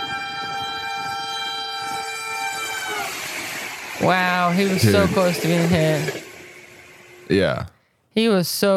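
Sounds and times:
train horn blaring: 0.0 - 7.3
train cars rumbling and clattering on railroad tracks: 2.4 - 7.3
speech: 4.0 - 6.2, 7.3 - 8.7.

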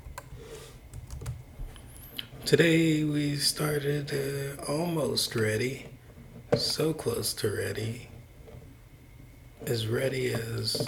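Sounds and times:
typing on a keyboard: 0.9 - 1.4
speech: 2.5 - 5.9, 6.5 - 8.1, 9.6 - 10.8.

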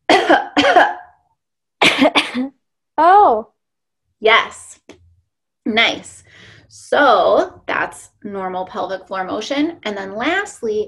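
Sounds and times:
loud coughs done as a pelvic floor check: 0.0 - 1.2, 1.8 - 2.6
speech: 3.0 - 3.5, 4.2 - 4.6, 5.7 - 6.2, 6.9 - 10.8.

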